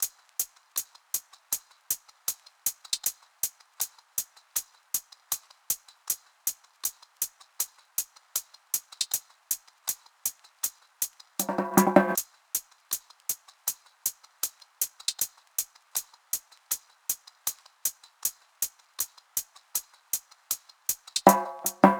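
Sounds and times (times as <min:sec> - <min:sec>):
hi-hat drum loop: 0:11.4 - 0:12.2, 0:21.3 - 0:21.9.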